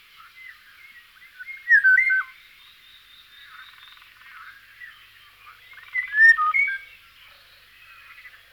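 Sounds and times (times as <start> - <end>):
Eurasian golden oriole fluty whistled song: 1.4 - 2.3, 5.9 - 6.9.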